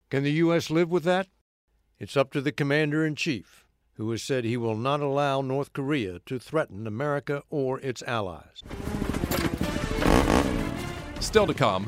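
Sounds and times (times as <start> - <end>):
speech: 0.1 - 1.4, 2.0 - 9.5, 11.2 - 11.8
motorcycle engine idling and revving: 8.8 - 10.7.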